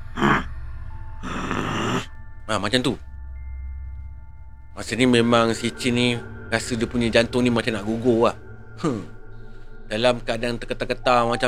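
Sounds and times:
person imitating a snorting growl with their voice: 0.2s - 0.5s, 1.2s - 2.1s
speech: 2.5s - 3.1s, 4.8s - 9.2s, 9.9s - 11.4s.

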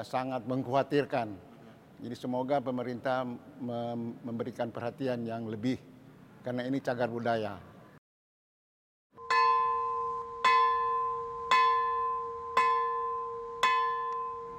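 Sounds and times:
speech: 0.0s - 7.7s
church bell tolling at a heritage-listed church signalling a worship service: 9.2s - 14.5s.

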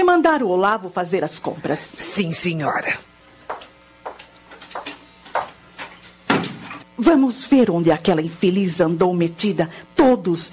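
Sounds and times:
speech: 0.0s - 3.1s, 7.0s - 10.5s
door closing with a solid thud: 6.3s - 6.8s.

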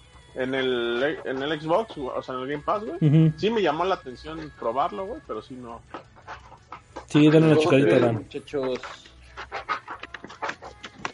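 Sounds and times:
speech: 0.4s - 6.1s, 7.1s - 9.0s
dog scratching its fabric cushion: 5.8s - 11.1s.

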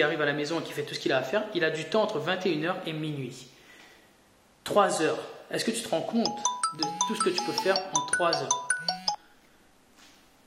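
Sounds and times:
speech: 0.0s - 3.6s, 4.7s - 9.0s
mobile phone electronic beeps: 6.3s - 9.2s.

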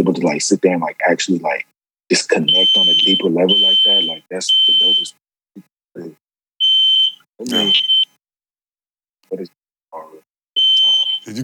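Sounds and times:
speech: 0.0s - 5.2s, 7.4s - 8.0s, 9.3s - 10.2s, 11.2s - 11.4s
fire alarm beeping: 2.5s - 5.1s, 6.6s - 8.1s, 10.6s - 11.3s.

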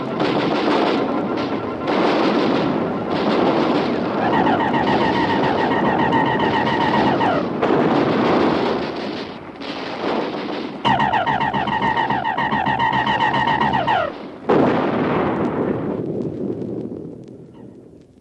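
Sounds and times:
artillery batteries firing a repeated barrage: 0.0s - 17.8s
high warbling tone: 1.5s - 7.6s, 10.9s - 14.2s.

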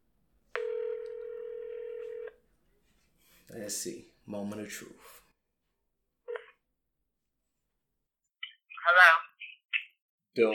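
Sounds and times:
steady electronic telephone tone as a call is placed: 0.6s - 2.4s
speech: 3.5s - 5.2s, 10.4s - 10.5s.

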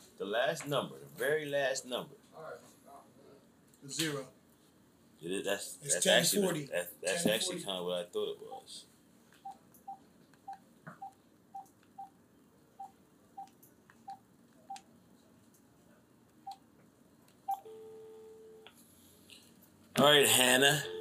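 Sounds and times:
speech: 0.2s - 2.8s, 3.8s - 4.4s, 5.2s - 8.9s, 20.0s - 21.0s
steady telephone tone: 17.5s - 18.7s, 20.8s - 21.0s.

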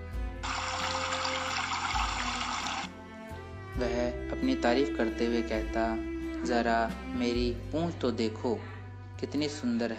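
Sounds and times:
river water flowing: 0.4s - 2.9s
speech: 3.8s - 9.9s.

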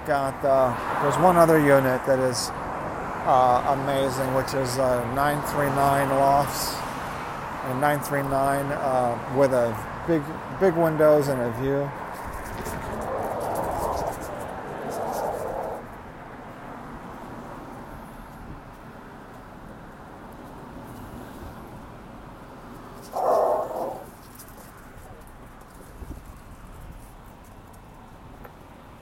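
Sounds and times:
speech: 0.0s - 6.8s, 7.6s - 12.0s
steady outdoor street background: 0.0s - 29.0s
dog barking at a bigger dog: 23.2s - 24.1s.

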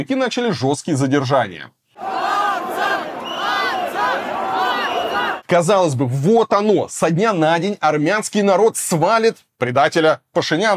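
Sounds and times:
speech: 0.0s - 1.8s, 5.5s - 10.7s
large crowd of protesters shouting while storming government buildings in Armenia: 2.0s - 5.4s.

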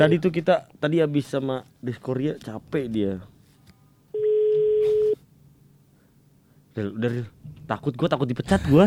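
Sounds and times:
speech: 0.0s - 3.3s, 6.8s - 8.8s
phone call ringback tone ringing unanswered: 4.2s - 5.2s.

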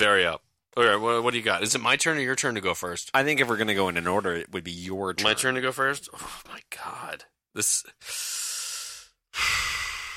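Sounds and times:
speech: 0.0s - 8.5s
deep breath: 8.0s - 10.1s.

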